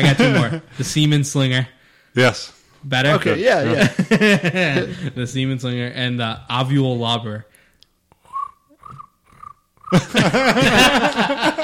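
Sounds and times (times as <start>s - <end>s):
laughter: 0.0s - 0.7s, 3.6s - 5.1s, 9.9s - 11.6s
speech: 0.0s - 7.5s, 9.9s - 11.6s
loud rough vocal noise: 8.3s - 10.0s
voice imitating cricket chirps: 8.3s - 10.0s.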